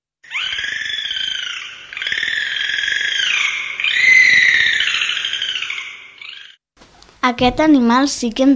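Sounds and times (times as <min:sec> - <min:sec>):
dolphin whistling calls: 0:00.2 - 0:06.6
speech: 0:07.2 - 0:08.5.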